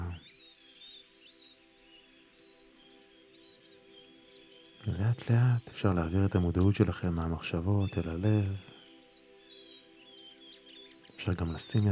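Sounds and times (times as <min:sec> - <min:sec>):
farm birds chirping and tweeting: 0:00.0 - 0:11.9
speech: 0:04.9 - 0:08.8, 0:11.2 - 0:11.9.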